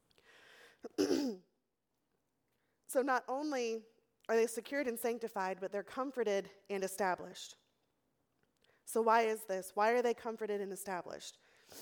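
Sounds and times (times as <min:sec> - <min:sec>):
throat clearing from a tickle in the throat: 0:00.9 - 0:01.4
speech: 0:03.0 - 0:07.6, 0:08.9 - 0:11.8.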